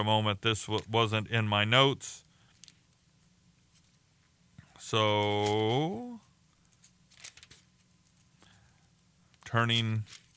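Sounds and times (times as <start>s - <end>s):
speech: 0.0s - 2.2s, 4.8s - 6.2s, 9.5s - 10.2s
book pages turning: 5.1s - 5.9s, 6.7s - 8.3s, 10.0s - 10.3s.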